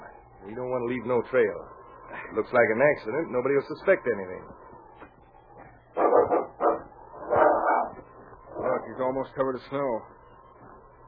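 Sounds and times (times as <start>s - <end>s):
speech: 0.4s - 4.6s, 9.0s - 10.2s
dog barking: 6.0s - 8.9s.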